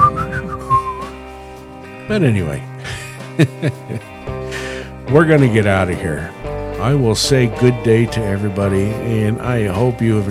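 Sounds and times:
person whistling a short tune: 0.0 - 1.2
speech: 2.1 - 2.7, 3.4 - 4.2, 5.1 - 10.3
laughter: 2.8 - 4.2.

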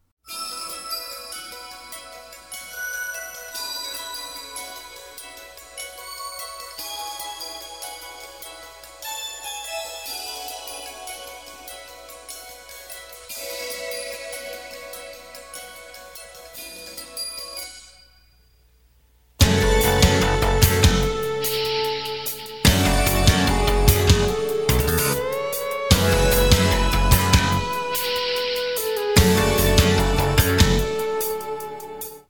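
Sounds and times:
synthesizer soundtrack music with bass and drums: 19.4 - 32.2.

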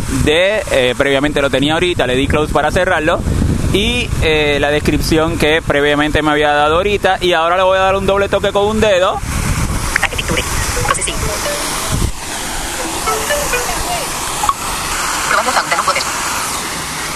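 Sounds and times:
speech: 0.1 - 9.4
faint scattered sounds: 10.0 - 11.8, 12.8 - 14.6
water splashing from an outdoor fountain: 10.0 - 17.1.

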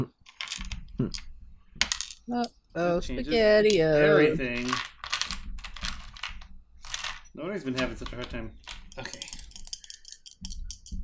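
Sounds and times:
eight-sided dice clattering across a surface during a tabletop game: 0.2 - 11.0
speech: 1.0 - 1.3, 2.3 - 4.9, 7.4 - 9.3.

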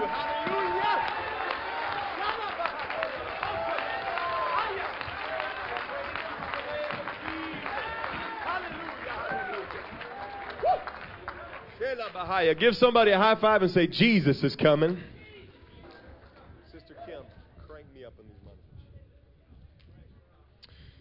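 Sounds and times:
church audience clapping and cheering: 0.0 - 15.0
speech: 12.3 - 15.1.

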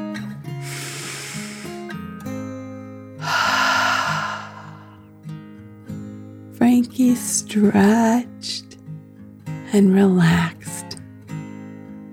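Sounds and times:
soft steady music: 0.0 - 12.1
deep breath drawn in and let out during a children's guided meditation: 0.6 - 2.0, 3.2 - 5.1
speech: 7.0 - 8.3, 9.7 - 10.6.

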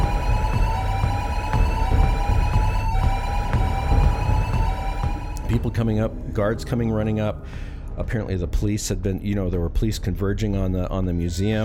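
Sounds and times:
electronic alarms blaring: 0.0 - 6.0
rumbling background: 0.0 - 11.6
speech: 5.8 - 11.6.

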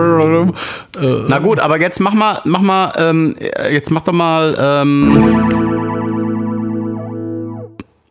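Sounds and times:
speech: 0.0 - 6.0
electric guitar chord through flanger pedal with depth and rate maxed: 5.0 - 7.8.

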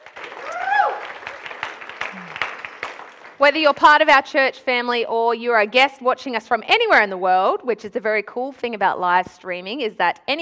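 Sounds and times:
church audience applauding: 0.0 - 3.4
person whooping or cheering: 0.4 - 1.1, 2.0 - 2.6
speech: 3.4 - 10.4.

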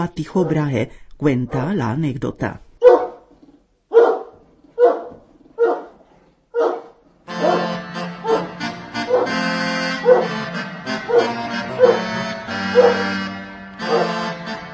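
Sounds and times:
speech: 0.0 - 2.7
dog barking: 2.8 - 3.3, 3.9 - 9.4, 10.0 - 10.4, 11.1 - 13.2, 13.9 - 14.2.

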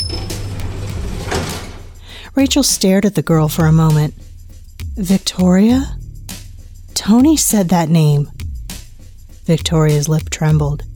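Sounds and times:
elevator doors sliding open: 0.0 - 2.0
speech: 2.4 - 4.3, 5.0 - 6.0, 7.0 - 8.3, 9.5 - 10.9.

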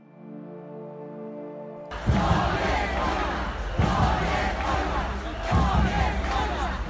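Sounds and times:
large outdoor protest crowd shouting a rhythmic chant in unison: 1.9 - 6.8.

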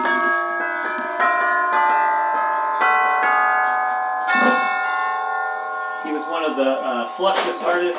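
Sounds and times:
orchestral chimes being struck: 0.0 - 7.9
speech: 6.6 - 7.9.

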